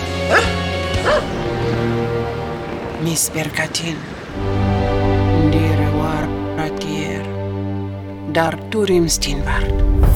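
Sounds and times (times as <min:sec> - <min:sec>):
steady music: 0:00.0 - 0:10.1
dog barking: 0:00.3 - 0:01.4
speech: 0:03.0 - 0:04.8, 0:08.4 - 0:09.9.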